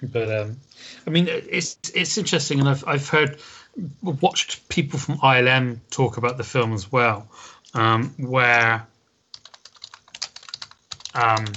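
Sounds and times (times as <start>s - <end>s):
speech: 0.0s - 8.9s, 11.2s - 11.5s
typing on a computer keyboard: 9.3s - 11.5s.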